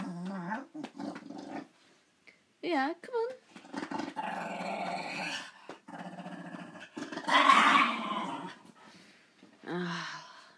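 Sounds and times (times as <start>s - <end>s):
dog growling: 0.0s - 1.8s, 3.6s - 8.7s
speech: 2.7s - 3.8s.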